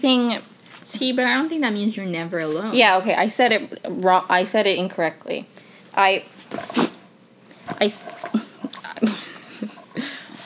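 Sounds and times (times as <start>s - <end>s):
speech: 0.0s - 6.6s, 7.8s - 8.2s
dog squirming over a person: 6.4s - 9.0s.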